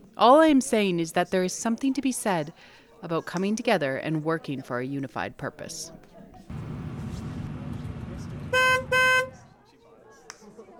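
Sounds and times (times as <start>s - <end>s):
speech: 0.2s - 6.1s
car horn giving loud sustained honks: 8.5s - 9.5s.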